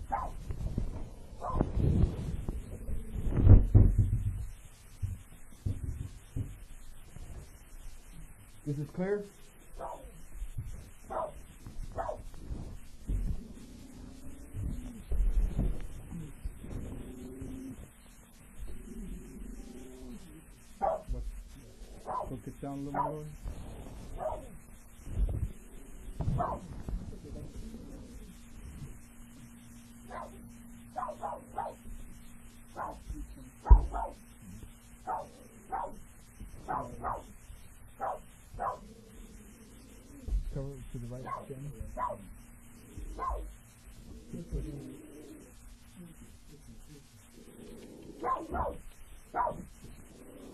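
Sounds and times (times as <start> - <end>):
low hum: 0.0 - 50.5
male puppy yipping and barking: 0.1 - 0.4, 1.4 - 1.7, 9.8 - 10.1, 11.1 - 11.4, 12.0 - 12.2, 20.8 - 21.1, 22.0 - 23.3, 24.2 - 24.6, 26.3 - 26.7, 30.1 - 30.4, 31.0 - 31.8, 32.8 - 33.0, 33.7 - 34.2, 35.0 - 36.0, 36.7 - 37.3, 38.0 - 38.8, 41.2 - 42.3, 43.2 - 43.5, 48.2 - 49.7
speech: 8.7 - 9.5, 22.8 - 23.4.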